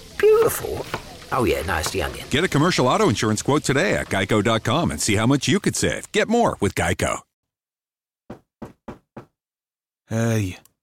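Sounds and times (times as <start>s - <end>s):
speech: 0.4s - 7.3s, 10.1s - 10.7s
firm knocks on a door: 8.3s - 9.4s.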